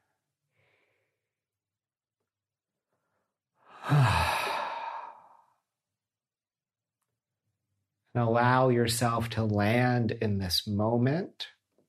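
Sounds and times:
slow deep breath in and out with a soft sigh: 0.0s - 1.4s, 2.9s - 5.6s
speech: 8.2s - 11.6s.

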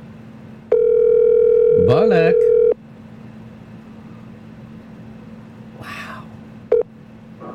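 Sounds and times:
outgoing call phone ringing tone: 0.7s - 2.8s
low hum: 1.6s - 2.7s
speech: 1.9s - 2.5s.

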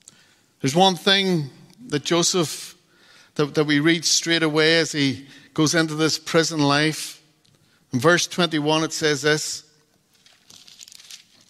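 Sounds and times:
speech: 0.6s - 2.8s, 3.4s - 7.2s, 7.9s - 9.7s
thin paper Bible pages rustling as they are turned: 10.1s - 11.4s.

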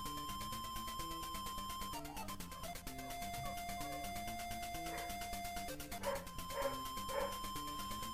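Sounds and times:
chiptune-style video game music: 0.0s - 8.1s
dog barking inside the house: 4.9s - 5.2s, 6.0s - 7.4s.

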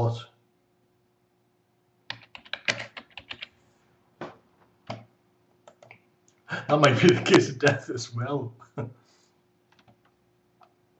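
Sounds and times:
speech: 0.0s - 0.3s, 6.5s - 9.0s
faint steady hum: 0.0s - 10.9s
typing an email on a computer keyboard: 2.1s - 3.5s, 5.7s - 6.0s, 9.7s - 10.1s
laughter: 6.5s - 8.0s.

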